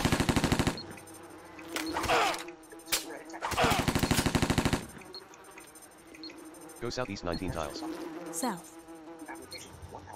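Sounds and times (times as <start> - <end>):
MP5 submachine gun burst fire in a video game: 0.0 - 0.8, 3.5 - 4.9
speech: 6.8 - 8.8.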